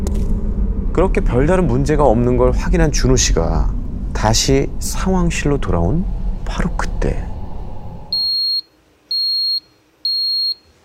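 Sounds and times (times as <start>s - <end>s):
low rumble: 0.0s - 8.3s
speech: 1.0s - 7.3s
high-pitched electronic alarm beeps: 8.1s - 10.6s.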